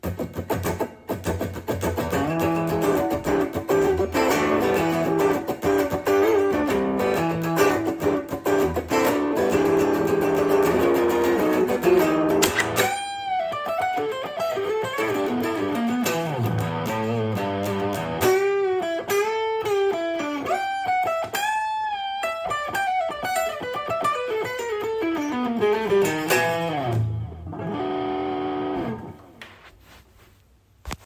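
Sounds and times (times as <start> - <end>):
rock guitar: 0.0 - 29.4.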